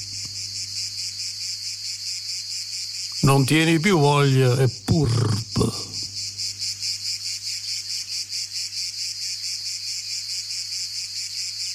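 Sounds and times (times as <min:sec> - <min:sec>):
cicadas chirping in a shrill chorus: 0:00.0 - 0:11.7
speech: 0:03.2 - 0:05.9.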